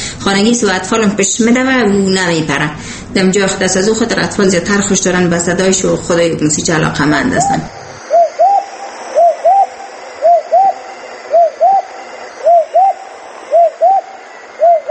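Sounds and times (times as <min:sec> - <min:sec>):
speech: 0:00.2 - 0:07.8
dove cooing two-note phrases: 0:07.4 - 0:14.9.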